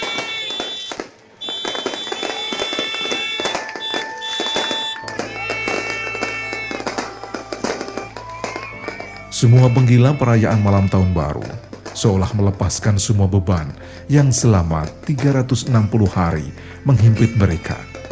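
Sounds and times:
New Year's Eve party trumpets blaring back and forth: 0:00.0 - 0:12.4, 0:15.1 - 0:18.0
sharp crackling bursts: 0:00.0 - 0:12.4, 0:14.8 - 0:18.0
speech: 0:09.4 - 0:17.9.

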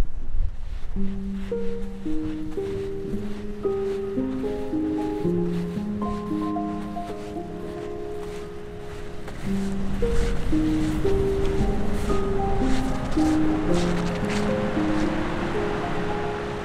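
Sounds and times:
wind on the Icelandic coast: 0:00.0 - 0:16.6
sea waves on the Icelandic coast: 0:01.0 - 0:16.6.

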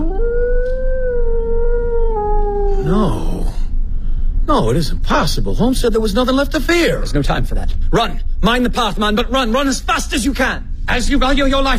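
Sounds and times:
dog howling on a moor: 0:00.0 - 0:03.4
constant low rumble: 0:00.0 - 0:11.7
speech: 0:04.6 - 0:11.7.

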